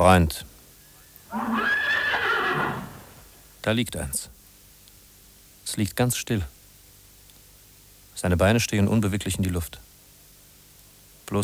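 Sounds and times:
speech: 0.0 - 0.5, 3.6 - 4.4, 5.7 - 6.6, 8.2 - 9.9, 11.3 - 11.4
horse neighing: 1.3 - 3.3.

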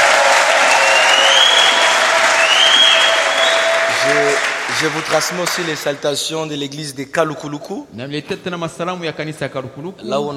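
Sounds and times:
church congregation applauding: 0.0 - 6.2
speech: 4.8 - 10.3.

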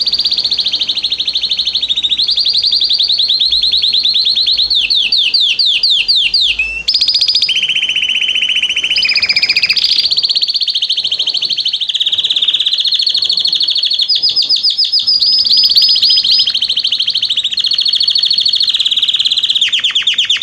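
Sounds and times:
male canary singing: 0.0 - 20.4.

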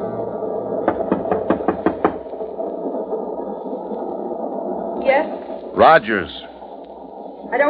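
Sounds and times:
steady hum: 0.0 - 7.6
knocking on a compartment door: 0.8 - 2.2
speech: 5.8 - 6.5.

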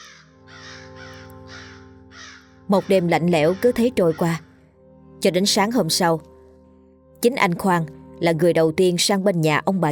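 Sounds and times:
crows cawing overhead on a cold night: 0.0 - 4.6
speech: 2.7 - 4.5, 5.2 - 6.3, 7.2 - 9.9.

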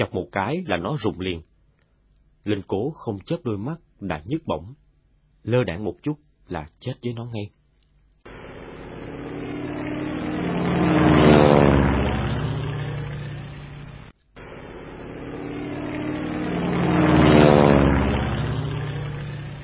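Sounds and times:
speech: 0.0 - 1.5, 2.4 - 4.8, 5.4 - 7.6
US military aircraft engine droning overhead: 8.3 - 19.6.

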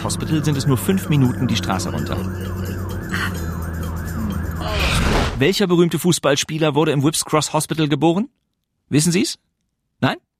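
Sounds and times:
ambulance siren wailing in a rise-and-fall cycle: 0.0 - 5.6
speech: 0.1 - 2.7, 5.4 - 10.3.

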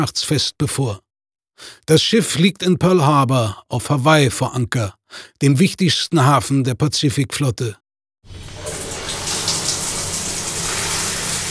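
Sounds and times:
speech: 0.0 - 1.0, 1.6 - 8.5
shower running inside a battleship moored at Pearl Harbor: 8.3 - 11.4.

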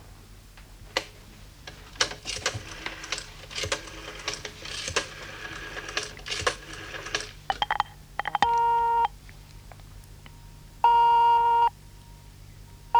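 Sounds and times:
telephone dial clicking: 1.0 - 9.2
buzzing telephone ring tones on the line: 1.7 - 9.2, 10.4 - 12.2.

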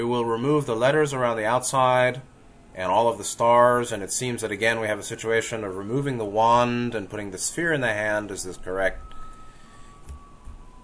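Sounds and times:
speech: 0.0 - 9.1
singing garbage truck in Taiwan playing its tune: 5.8 - 10.8.

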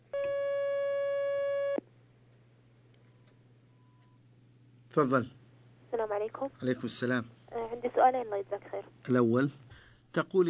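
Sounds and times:
faint low hum: 0.0 - 10.4
steady electronic telephone line tone as an incoming call is taken: 0.2 - 1.8
speech: 5.0 - 5.4, 6.2 - 10.4.

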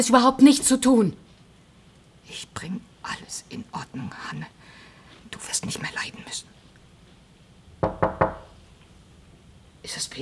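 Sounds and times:
speech: 0.0 - 1.3, 2.3 - 4.6, 5.3 - 6.5, 9.8 - 10.1
sharp knocks on a door: 7.8 - 8.6.

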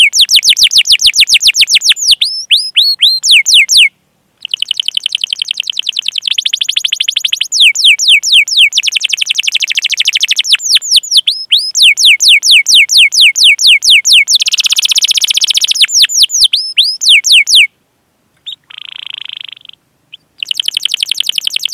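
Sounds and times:
domestic canary singing: 0.0 - 17.7, 18.4 - 21.7.

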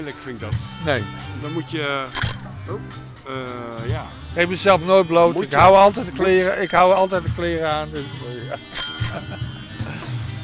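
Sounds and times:
bell ringing: 0.0 - 0.4, 2.1 - 2.5, 6.1 - 7.8, 8.7 - 10.0
speech: 0.0 - 9.4.

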